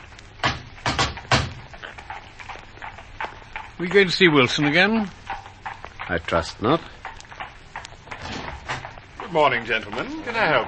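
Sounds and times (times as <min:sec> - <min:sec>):
firm knocks on a door: 0:00.4 - 0:01.6
speech: 0:03.8 - 0:05.2, 0:06.1 - 0:07.0, 0:09.3 - 0:10.6.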